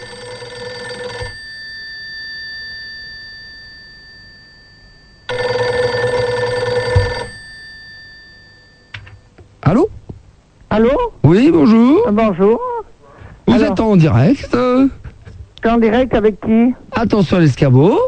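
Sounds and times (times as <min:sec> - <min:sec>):
electronic telephone ring tone down the line: 0:00.0 - 0:01.7, 0:05.2 - 0:09.3
speech: 0:10.8 - 0:12.6, 0:13.6 - 0:15.0, 0:15.6 - 0:18.0.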